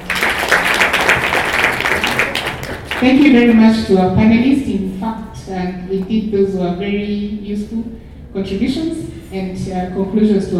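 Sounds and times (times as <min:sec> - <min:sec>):
audience applause closing a panel meeting on parliament: 0:00.0 - 0:03.1
speech: 0:03.0 - 0:10.5.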